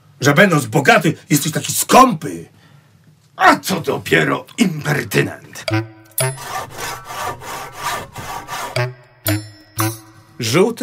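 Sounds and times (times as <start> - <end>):
speech: 0.2 - 2.6, 3.4 - 7.0, 10.4 - 10.8
hand saw cutting wood: 5.7 - 9.0.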